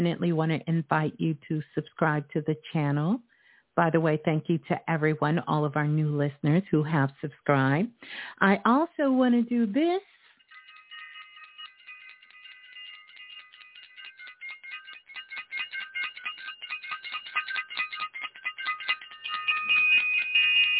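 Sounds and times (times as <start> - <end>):
speech: 0.0 - 10.1
handbell rung rapidly with bright metallic clanging: 10.4 - 20.7.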